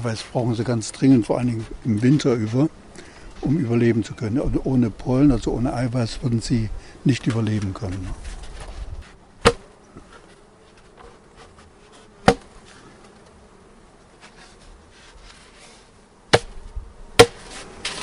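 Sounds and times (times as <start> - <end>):
speech: 0.0 - 2.8, 3.4 - 8.3
bees humming inside a beehive lid: 0.0 - 18.0
sharp knocks: 9.4 - 9.7, 12.2 - 12.5, 16.3 - 16.6, 17.2 - 17.4.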